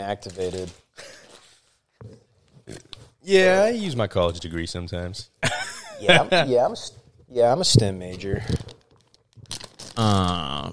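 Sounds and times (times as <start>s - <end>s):
speech: 0.0s - 0.8s, 3.2s - 5.4s, 6.0s - 8.7s, 10.0s - 10.7s
Lifesavers candy wrapper crinkling: 0.1s - 1.4s, 8.2s - 10.7s.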